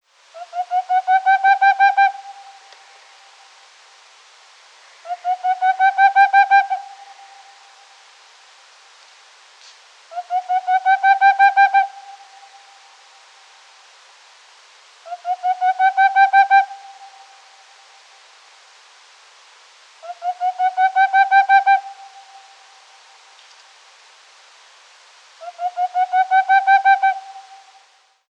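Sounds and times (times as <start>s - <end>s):
Aegolius funereus boreal owl calling: 0.3s - 3.4s, 5.0s - 7.8s, 10.1s - 13.0s, 15.0s - 17.9s, 20.0s - 23.4s, 25.4s - 27.8s.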